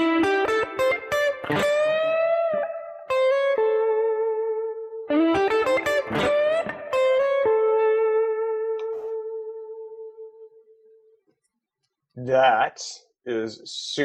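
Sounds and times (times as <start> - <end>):
electric guitar playing a blues lick: 0.0 - 10.6
speech: 12.3 - 14.0.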